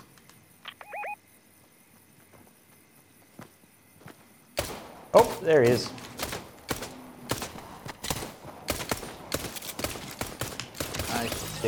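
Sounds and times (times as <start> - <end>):
video game gunshots cracking in irregular bursts: 4.6 - 11.6
speech: 5.2 - 6.0.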